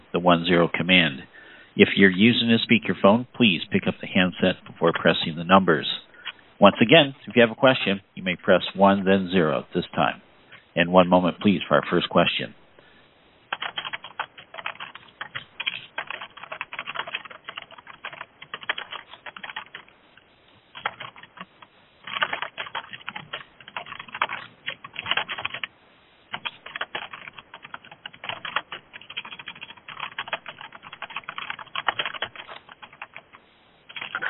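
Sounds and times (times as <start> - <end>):
speech: 0.1 - 10.2, 10.8 - 12.6
fast typing on a computer keyboard: 13.5 - 19.9, 20.7 - 25.7, 26.3 - 34.2.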